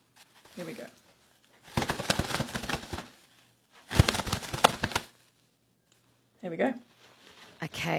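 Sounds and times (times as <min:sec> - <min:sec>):
speech: 0:00.6 - 0:01.0, 0:06.4 - 0:06.9, 0:07.6 - 0:07.9
hand-made imitation of bird wings flapping: 0:01.7 - 0:03.2, 0:03.8 - 0:05.2.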